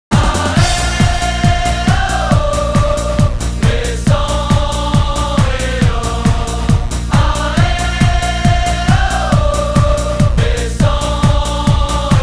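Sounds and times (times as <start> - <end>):
crowd chanting in Lens: 0.1 - 12.2.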